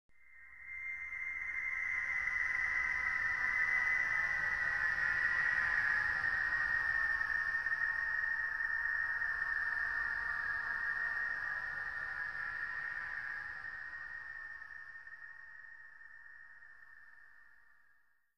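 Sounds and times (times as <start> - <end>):
whine: 0.1 - 17.8.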